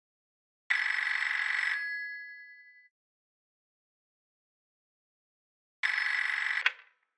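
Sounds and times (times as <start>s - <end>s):
telephone bell ringing: 0.7s - 2.9s, 5.8s - 6.8s.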